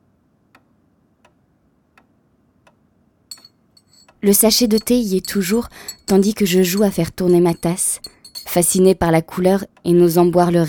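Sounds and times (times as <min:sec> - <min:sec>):
clock ticking: 0:03.3 - 0:10.6
speech: 0:04.2 - 0:10.6.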